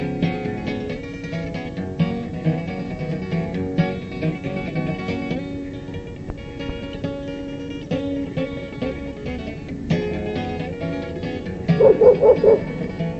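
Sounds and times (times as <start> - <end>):
musician playing a song over steady instrumental music: 0.0 - 13.1
very vocal dog barking and yipping: 11.8 - 12.8.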